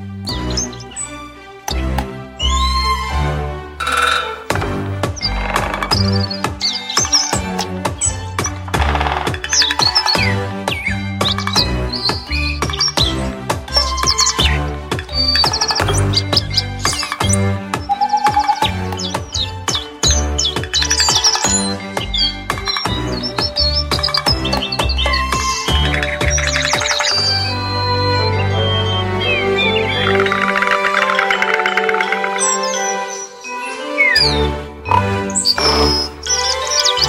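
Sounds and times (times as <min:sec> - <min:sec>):
bird-like trilling opera melody in a recorder-like timbre: 0:00.0 - 0:37.0
full musical backing: 0:00.0 - 0:37.0.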